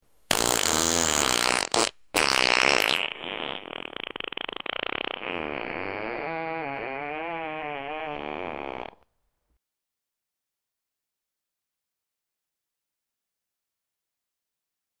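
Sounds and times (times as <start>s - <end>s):
long sharp fart sound effect: 0.3s - 9.0s.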